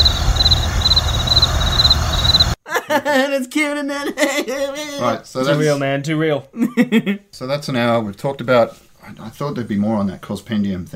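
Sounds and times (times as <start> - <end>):
crickets chirping: 0.0 - 2.6
low constant rumble: 0.0 - 2.6
speech: 3.0 - 10.9.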